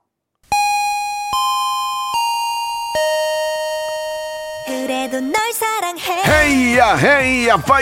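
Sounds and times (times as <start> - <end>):
bright bell chimes in a descending sequence: 0.5 - 5.5
speech: 4.9 - 7.8.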